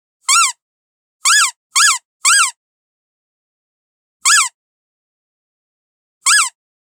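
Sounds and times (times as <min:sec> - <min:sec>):
toy duck squeak: 0:00.2 - 0:00.6, 0:01.2 - 0:02.6, 0:04.2 - 0:04.6, 0:06.2 - 0:06.6.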